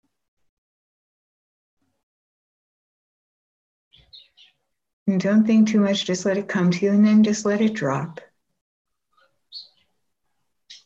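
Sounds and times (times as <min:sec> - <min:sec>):
short high bird chirps: 0:03.9 - 0:04.7, 0:09.1 - 0:10.0, 0:10.6 - 0:10.8
speech: 0:04.1 - 0:04.5, 0:05.1 - 0:08.3.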